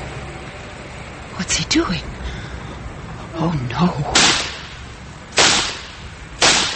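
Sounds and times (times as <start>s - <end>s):
speech: 1.5s - 2.2s, 3.4s - 4.4s
gunshots: 4.2s - 4.8s, 5.4s - 6.7s.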